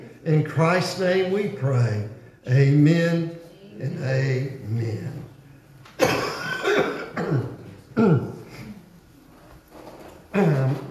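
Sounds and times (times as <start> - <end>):
speech: 0.2 - 5.3, 6.0 - 8.3
man coughing: 6.0 - 8.5
man clearing throat: 6.0 - 8.7.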